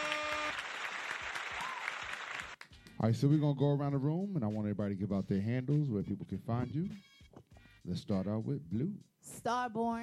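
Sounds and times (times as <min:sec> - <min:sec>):
applause in a room of people: 0:00.0 - 0:02.9
speech: 0:03.0 - 0:07.1, 0:07.8 - 0:10.0.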